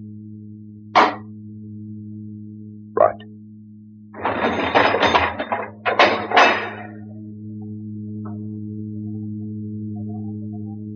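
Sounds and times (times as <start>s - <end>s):
low steady hum: 0.0s - 10.9s
heavy metal door bolts being drawn back: 4.2s - 7.0s.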